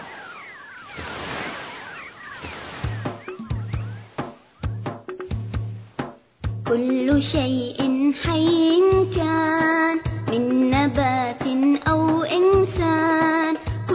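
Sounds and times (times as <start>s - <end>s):
sea waves where a river meets the sea beside a waterfall: 0.0s - 4.6s
faint bird-like chirps: 0.0s - 4.9s
plucked music with sharp percussive hits: 2.8s - 13.0s
speech: 6.7s - 13.2s.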